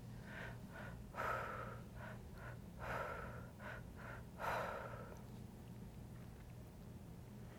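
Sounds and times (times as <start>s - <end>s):
rhythmic forceful breathing during a breathwork exercise: 0.0s - 5.2s
low steady hum: 0.0s - 7.5s.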